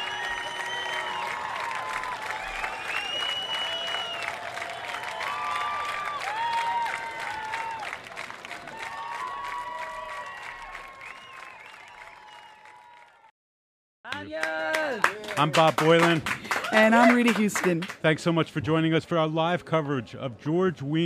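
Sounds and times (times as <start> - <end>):
sharp whistles from festival crowd: 0.0 - 1.5, 2.5 - 4.4, 11.0 - 12.6
large festival crowd applauding in rain: 0.0 - 13.3, 14.1 - 18.3
speech: 15.4 - 21.0.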